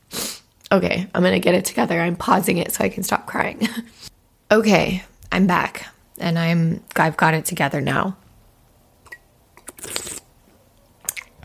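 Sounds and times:
speech: 0.7 - 8.2
tea being drunk in sips: 9.0 - 10.3
longer airy slurp of tea: 9.6 - 10.3.

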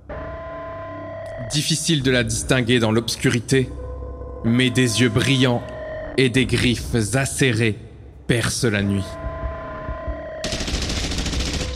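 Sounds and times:
speech: 1.4 - 3.8, 4.4 - 9.2
automatic gunfire from soldiers in trenches: 10.4 - 11.7.

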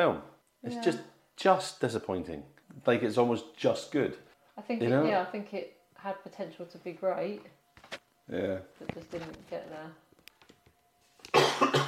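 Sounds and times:
speech: 0.0 - 7.6, 8.3 - 10.0
person coughing: 11.3 - 11.8.

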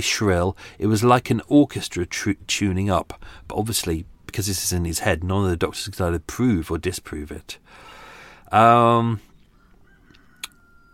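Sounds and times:
speech: 0.0 - 7.9, 8.5 - 9.3
cockerel crowing: 9.5 - 10.9.

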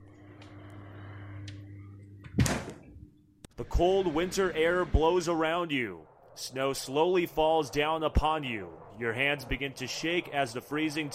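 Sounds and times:
steady low electrical hum in a kitchen: 0.0 - 11.1
speech: 3.6 - 11.1.

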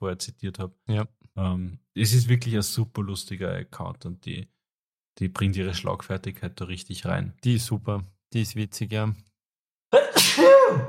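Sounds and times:
speech: 0.0 - 4.6, 5.2 - 9.3
loud sneeze: 10.0 - 10.8.

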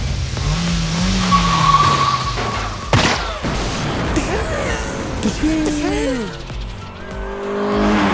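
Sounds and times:
car engines roaring in a movie car chase: 0.0 - 8.1
tires screeching in a movie car chase: 0.0 - 8.1
car exploding after being shot at: 1.2 - 4.4.

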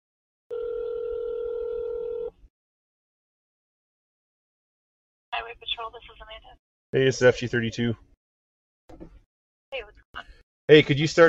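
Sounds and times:
loud steady telephone tone: 0.5 - 2.4
speech: 5.5 - 8.1, 8.9 - 11.2.

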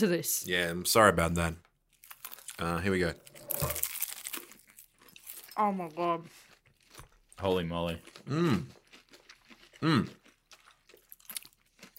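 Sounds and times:
speech: 0.0 - 1.7, 2.6 - 3.9, 5.6 - 6.4, 7.4 - 8.8, 9.8 - 10.2
hot and spicy fried chicken bitten and chewed: 1.9 - 5.5, 6.3 - 11.9
wet chewing: 1.9 - 11.9.

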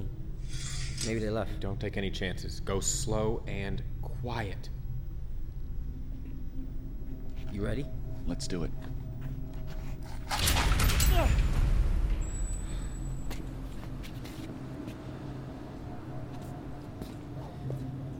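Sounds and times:
steady low hum: 0.0 - 18.1
speech: 1.0 - 4.8, 7.5 - 8.9
door creaking open: 10.3 - 13.3.

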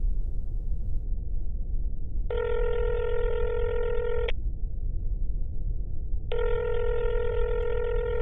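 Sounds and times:
steady low rumble of phone line noise: 0.0 - 8.1
phone line ringback tone: 2.3 - 4.3, 6.3 - 8.1.

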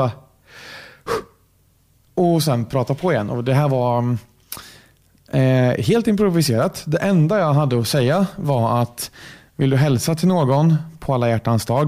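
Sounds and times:
speech: 0.0 - 1.2, 2.2 - 4.6, 5.3 - 11.8
person imitating a sharp gasp for breath: 0.5 - 1.4.

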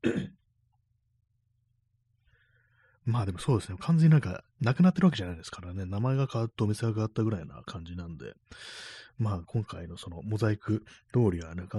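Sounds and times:
throat clearing: 0.0 - 0.4
speech: 3.1 - 11.7.

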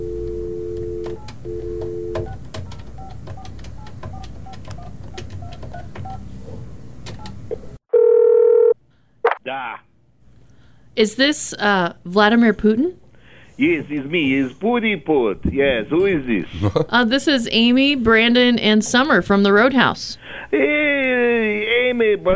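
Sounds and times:
telephone dial tone: 0.0 - 2.4, 7.9 - 8.8
loud steady telephone tone: 0.0 - 6.2, 7.9 - 8.8
speech: 11.0 - 13.0, 13.6 - 21.1, 22.0 - 22.3.

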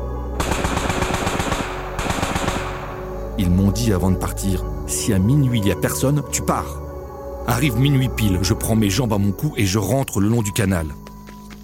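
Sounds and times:
machine gun firing bursts into empty air beside a canal: 0.4 - 3.0
speech: 3.4 - 6.8, 7.5 - 11.1.

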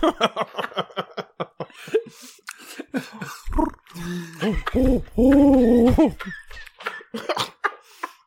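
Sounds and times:
laughter: 0.0 - 2.2, 4.4 - 8.2
person imitating pigeon clucks and coos: 3.5 - 6.2.

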